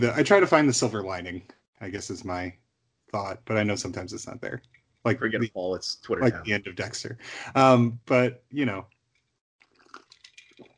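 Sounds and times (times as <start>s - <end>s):
laughter: 0.0s - 1.2s, 3.2s - 8.4s
speech: 0.0s - 8.9s
liquid slurping of a strong rum cocktail: 9.6s - 10.7s.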